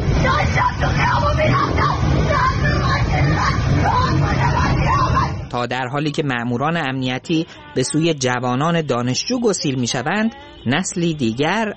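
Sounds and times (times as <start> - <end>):
dense noisy crowd: 0.0 - 11.7
women shouting angrily at riot police: 0.2 - 5.5
speech: 5.5 - 11.7.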